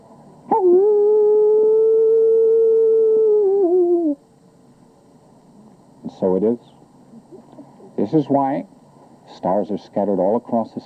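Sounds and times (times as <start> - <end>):
coyote howling: 0.5 - 4.2
speech: 6.2 - 6.8, 8.1 - 10.8.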